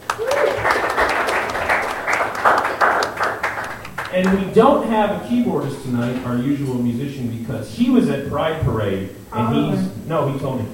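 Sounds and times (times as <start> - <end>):
audience applause for a musician: 0.0 - 5.2
person whooping: 0.1 - 0.8
speech: 4.2 - 10.7.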